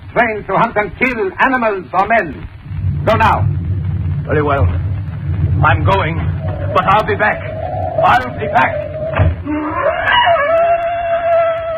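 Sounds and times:
speech: 0:00.1 - 0:03.6, 0:04.3 - 0:04.9, 0:05.6 - 0:09.6
low rumbling background: 0:02.2 - 0:09.5
black panthers screaming: 0:06.0 - 0:11.7.

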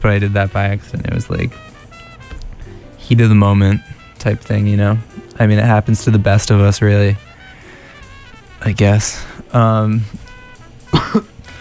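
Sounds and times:
speech: 0:00.0 - 0:01.7, 0:03.1 - 0:07.3, 0:08.6 - 0:10.2, 0:10.9 - 0:11.3
person with no cold coughing harshly: 0:10.9 - 0:11.5.

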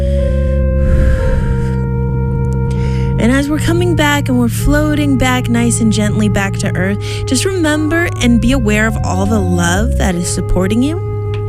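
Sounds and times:
slow deep inhale: 0:00.0 - 0:01.8
steady humming drone of ambient music: 0:00.0 - 0:11.4
speech: 0:03.2 - 0:11.1.

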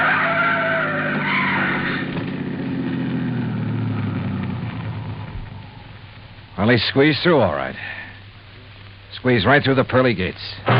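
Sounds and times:
car tires screeching in a long skid: 0:00.0 - 0:06.1
heavy rumbling engine roar: 0:00.0 - 0:06.4
speech: 0:06.6 - 0:08.0, 0:09.2 - 0:10.7.

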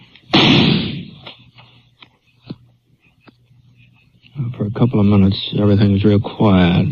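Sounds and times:
single loud gunshot with long decay: 0:00.3 - 0:01.2
speech: 0:04.6 - 0:06.9.

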